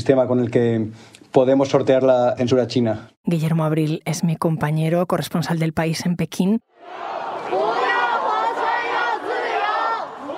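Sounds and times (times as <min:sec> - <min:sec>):
speech: 0:00.0 - 0:07.2
large protest crowd chanting and shouting in the street: 0:06.8 - 0:10.3.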